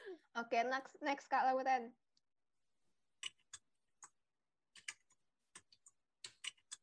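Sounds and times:
speech: 0.5s - 2.1s
typing on a computer keyboard: 4.7s - 6.8s.

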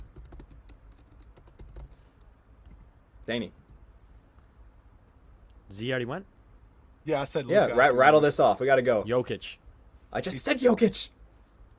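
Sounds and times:
rapid typing on a computer keyboard in a document: 0.0s - 2.0s
low hum: 0.0s - 11.7s
speech: 3.2s - 3.6s, 5.7s - 6.4s, 7.0s - 11.2s.

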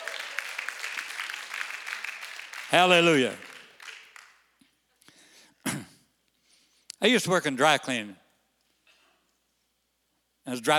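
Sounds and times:
audience applauding: 0.0s - 4.5s
speech: 2.7s - 3.5s, 7.0s - 8.2s, 10.5s - 10.7s.

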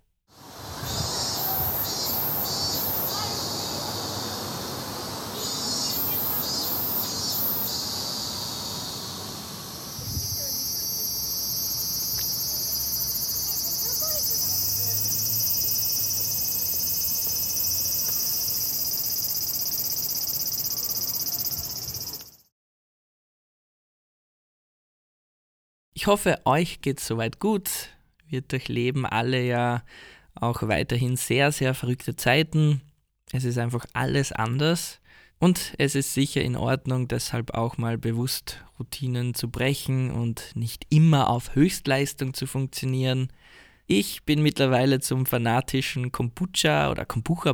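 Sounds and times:
cicadas buzzing outdoors in summer: 0.3s - 22.5s
speech: 26.0s - 47.5s.

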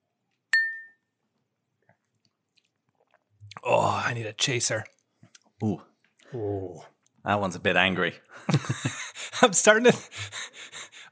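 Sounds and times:
glasses clinking in a toast: 0.6s - 1.0s
speech: 3.6s - 5.0s, 5.6s - 10.4s.

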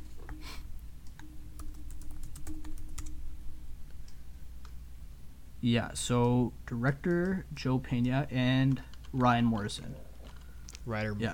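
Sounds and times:
low constant hum: 0.0s - 11.3s
typing on a computer keyboard: 1.1s - 3.2s
speech: 5.6s - 10.1s, 10.8s - 11.3s.

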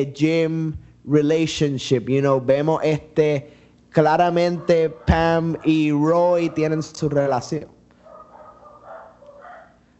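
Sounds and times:
speech: 0.0s - 7.8s
dogs barking and yipping: 4.1s - 9.9s.

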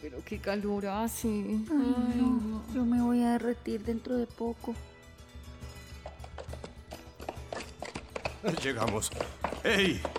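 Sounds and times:
speech: 0.0s - 4.9s, 8.4s - 10.1s
horse hooves clip-clopping in a trot: 5.9s - 10.1s.

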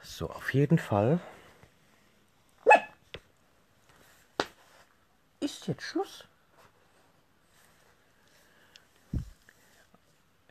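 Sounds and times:
speech: 0.2s - 1.4s, 5.7s - 6.3s
dog barking: 2.6s - 3.0s.

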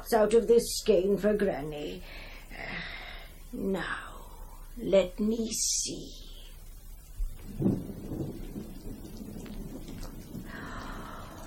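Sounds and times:
speech: 0.0s - 2.9s, 3.5s - 4.1s, 4.8s - 6.3s, 7.5s - 8.0s
rain: 0.0s - 11.4s
low rumble of thunder: 6.0s - 11.4s.

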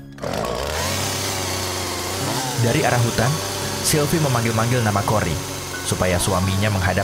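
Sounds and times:
chainsaw cutting down a tree: 0.0s - 7.0s
speech: 2.6s - 7.0s.

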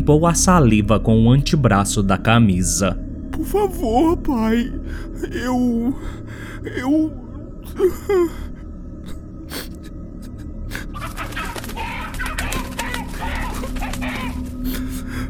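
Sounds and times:
speech: 0.1s - 8.5s
laughter: 9.1s - 15.2s
frightened chicken flapping wings: 10.7s - 15.1s
frightened chicken squawking and clucking: 10.8s - 14.6s.

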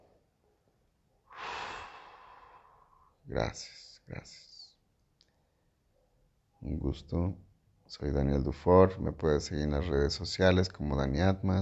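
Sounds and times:
deep breath in through the nose and out through the mouth during a guided breathing exercise: 1.3s - 3.2s
speech: 3.3s - 4.6s, 6.6s - 11.6s.

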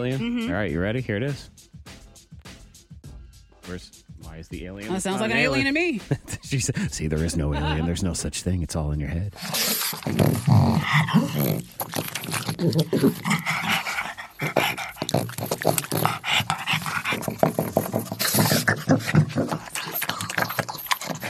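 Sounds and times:
speech: 0.0s - 1.7s, 3.7s - 13.7s
laughter: 4.9s - 8.2s
pug dog growling and grumbling to itself: 9.3s - 21.2s.

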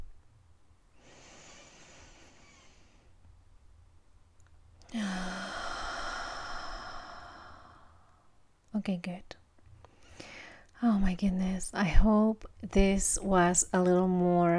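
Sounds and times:
deep breath in and slow exhale: 1.0s - 3.1s, 4.9s - 8.0s
speech: 8.8s - 9.4s, 10.8s - 14.5s.

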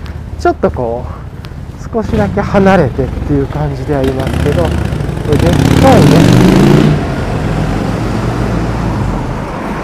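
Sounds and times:
street traffic: 0.0s - 9.8s
speech: 0.4s - 1.2s, 1.9s - 6.8s
large motorcycle roaring past at a street crossing with traffic lights: 2.1s - 9.8s.

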